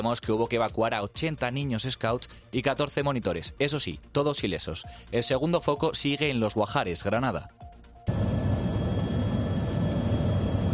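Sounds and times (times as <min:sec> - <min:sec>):
speech: 0:00.0 - 0:08.2
helicopter working a wildfire operation: 0:08.1 - 0:10.7.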